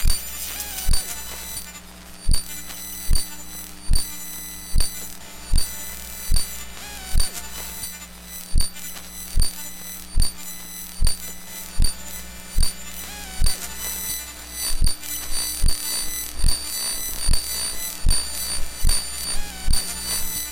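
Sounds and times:
low electrical hum from mobile phone electromagnetic fields: 0.0 - 20.5.

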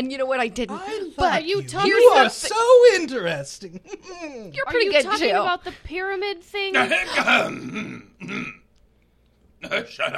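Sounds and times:
speech: 0.0 - 8.5, 9.6 - 10.1
rough throaty coughs: 6.8 - 8.6.

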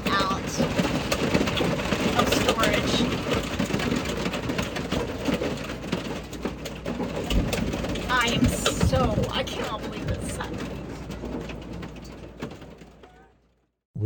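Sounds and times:
hail hitting a travel trailer: 0.0 - 13.4.

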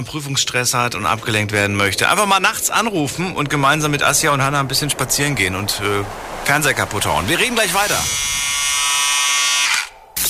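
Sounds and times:
speech: 0.0 - 8.6
electric shaver buzzing: 8.0 - 10.2.

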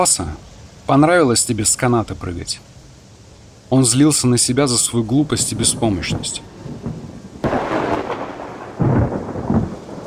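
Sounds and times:
speech: 0.0 - 2.7, 3.7 - 7.0
steady rain hissing in a rainstorm: 0.0 - 10.0
sharp crack and deep rumble of thunder: 5.4 - 10.0.

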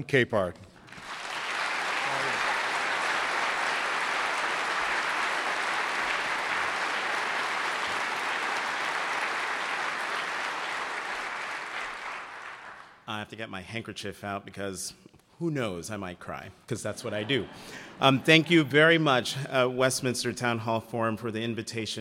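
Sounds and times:
speech: 0.0 - 0.6, 13.3 - 21.9
large audience applauding: 0.8 - 13.0
audience cheering: 1.0 - 12.8.

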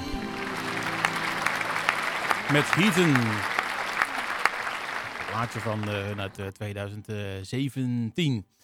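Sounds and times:
crowd applause: 0.0 - 6.4
speech: 2.5 - 3.5, 5.4 - 8.6.

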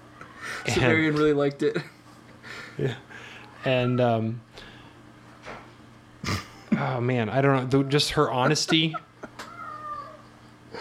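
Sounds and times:
low steady hum: 0.0 - 10.8
speech: 0.6 - 2.0, 2.8 - 4.5, 6.8 - 9.1
laughter: 7.5 - 10.8
pet cat meowing: 9.4 - 10.3.

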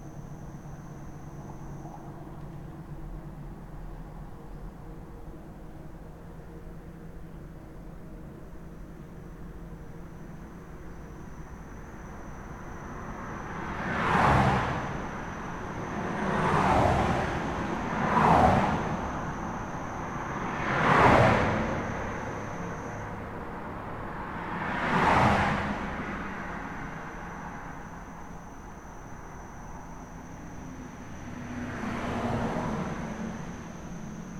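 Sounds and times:
cars passing by with a rising and falling whoosh: 12.2 - 34.3.

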